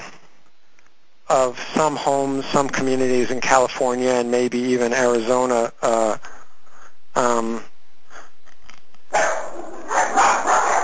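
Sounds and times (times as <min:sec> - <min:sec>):
speech: 0:01.3 - 0:06.3, 0:07.2 - 0:07.7
dogs barking over a phone line: 0:09.1 - 0:10.8.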